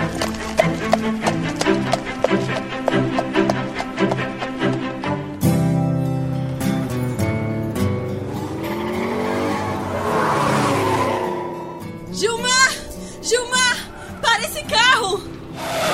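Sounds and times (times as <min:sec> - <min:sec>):
horse hooves galloping: 0:00.0 - 0:05.5
musical backing: 0:00.0 - 0:15.9.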